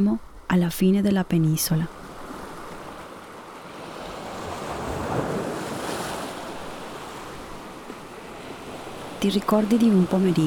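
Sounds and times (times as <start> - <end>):
speech: 0.0 - 2.0, 9.2 - 10.4
sea waves breaking against rocks at Capo di Leuca on a sunny day: 2.0 - 9.2.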